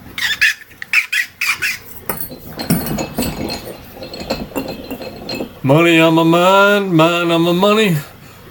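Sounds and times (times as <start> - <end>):
squeaky wheelbarrow wheel: 0.0 - 6.4
wheelbarrow rolling rumble while being pushed: 1.9 - 7.5
speech: 5.6 - 8.1.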